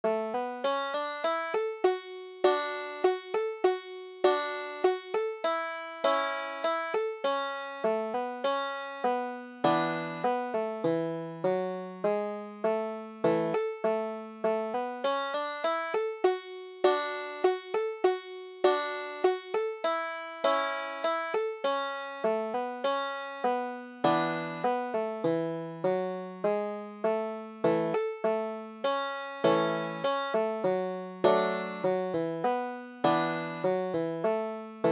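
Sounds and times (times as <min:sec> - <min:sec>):
banjo playing: 0:00.0 - 0:34.8.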